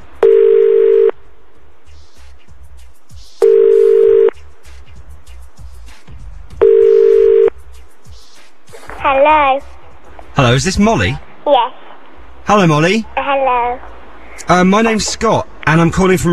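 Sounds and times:
telephone ringback tone while call connects: 0:00.2 - 0:01.1, 0:03.4 - 0:04.3, 0:06.6 - 0:07.5
speech: 0:09.1 - 0:09.8, 0:10.4 - 0:11.9, 0:12.5 - 0:13.9, 0:14.5 - 0:16.3.

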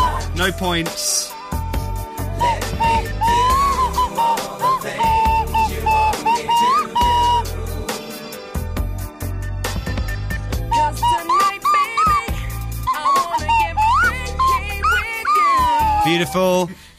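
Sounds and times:
person whistling a pop song melody: 0:00.0 - 0:08.6, 0:09.9 - 0:16.6
loud backing track with a thumping bass beat: 0:00.0 - 0:16.2
speech: 0:00.4 - 0:01.2, 0:16.1 - 0:16.9.

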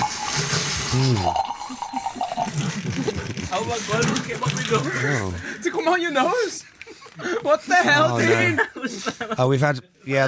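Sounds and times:
natural wine pouring into a glass in a wine cellar: 0:00.0 - 0:03.2
speech: 0:00.9 - 0:01.9, 0:03.0 - 0:10.2
laughter: 0:02.4 - 0:09.6.

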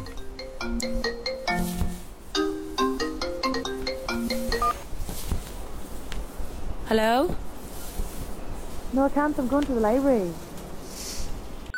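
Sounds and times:
phone ringing with a melodic electronic ringtone: 0:00.0 - 0:04.8
speech: 0:06.9 - 0:07.4, 0:09.0 - 0:10.4.

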